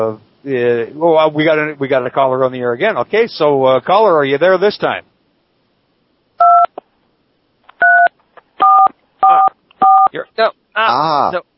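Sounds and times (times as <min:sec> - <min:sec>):
speech: 0:00.0 - 0:05.1, 0:10.1 - 0:11.5
telephone keypad buttons pushed giving two-tone DTMF beeps: 0:06.4 - 0:06.7, 0:07.8 - 0:10.1.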